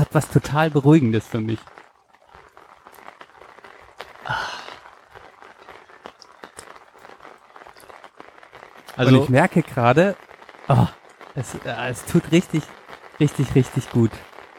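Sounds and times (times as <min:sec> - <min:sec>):
rain drops tapping on an umbrella: 0:00.0 - 0:14.5
speech: 0:00.1 - 0:01.8, 0:09.0 - 0:14.3
sigh-like voice: 0:04.2 - 0:04.8.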